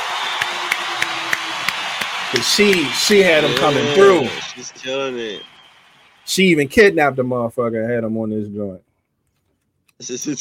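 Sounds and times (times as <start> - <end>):
sharp evenly spaced claps: 0.0 - 6.3
crowd applause and cheering: 0.0 - 7.0
speech: 2.3 - 5.5, 6.3 - 8.8, 10.0 - 10.3.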